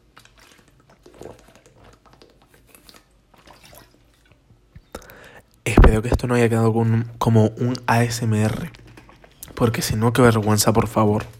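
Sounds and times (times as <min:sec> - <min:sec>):
person sipping and swallowing water: 0:00.0 - 0:05.6, 0:08.6 - 0:09.6
speech: 0:05.9 - 0:08.8, 0:09.6 - 0:11.3.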